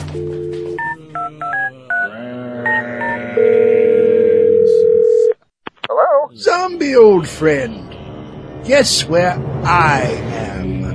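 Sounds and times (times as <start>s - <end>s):
telephone dial or ringback tone: 0.2s - 5.4s
speech: 6.9s - 7.8s, 8.6s - 10.8s.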